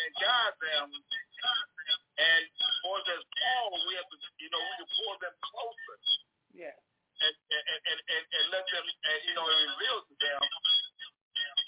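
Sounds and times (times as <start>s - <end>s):
caller's voice over a band-limited phone line with echo: 0.0s - 6.2s, 7.2s - 11.6s.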